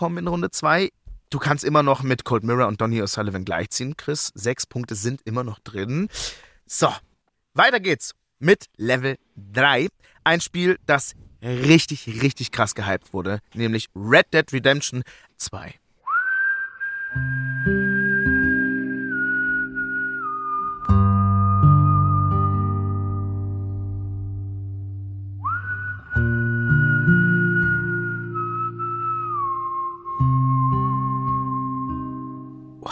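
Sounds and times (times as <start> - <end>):
speech: 0.0 - 15.8, 17.1 - 17.4
whistled melody from a video game soundtrack: 16.1 - 24.2, 25.4 - 32.8
warm held instrumental chords: 17.2 - 32.9.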